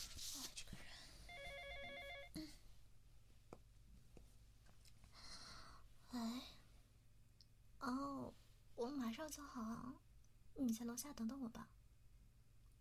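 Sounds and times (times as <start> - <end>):
phone ringing with short rapid electronic trill: 1.3 - 2.4
faint breathy sounds: 5.1 - 6.7
speech: 6.1 - 6.5, 7.8 - 10.0, 10.6 - 11.8.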